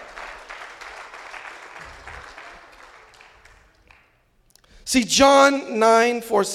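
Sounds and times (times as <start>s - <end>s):
crowd clapping hands in applause: 0.0s - 4.2s
speech: 4.9s - 6.5s.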